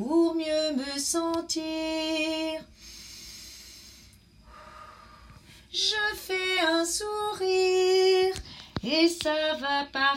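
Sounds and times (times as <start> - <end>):
speech: 0.0 - 2.7, 5.7 - 8.1, 8.8 - 10.1
deep breathy exhalations taken to calm down: 2.8 - 5.7.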